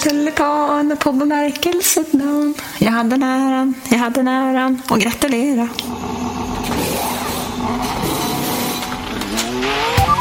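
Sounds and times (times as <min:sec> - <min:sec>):
speech: 0:00.0 - 0:06.2
Formula 1 car engine accelerating through gear shifts: 0:05.9 - 0:10.1.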